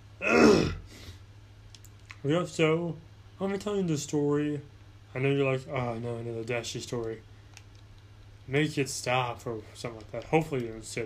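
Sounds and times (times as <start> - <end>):
raspy throat clearing with gravelly voiced rumble: 0.2 - 0.9
speech: 2.2 - 7.3, 8.5 - 11.0.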